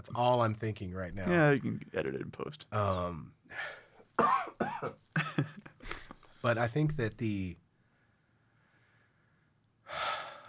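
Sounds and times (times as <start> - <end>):
speech: 0.0 - 5.5, 6.4 - 7.6
person coughing: 4.2 - 5.0.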